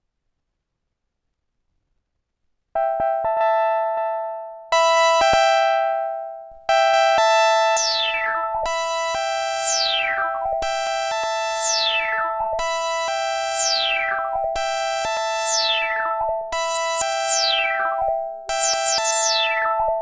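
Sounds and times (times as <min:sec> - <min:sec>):
JUNO-106 synthesizer: 0:02.8 - 0:20.0.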